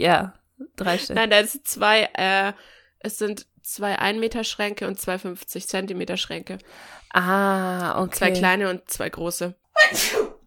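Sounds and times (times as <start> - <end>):
speech: 0.0 - 10.4
person sneezing: 9.8 - 10.4.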